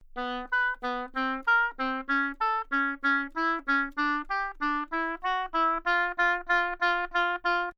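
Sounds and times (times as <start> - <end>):
solo oboe phrase on B3 played mezzo-forte tenuto: 0.2 - 7.7.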